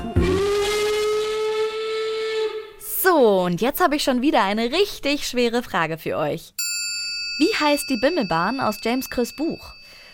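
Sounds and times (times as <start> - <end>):
steam train whistle: 0.2 - 2.8
speech: 3.5 - 6.6, 7.4 - 9.8.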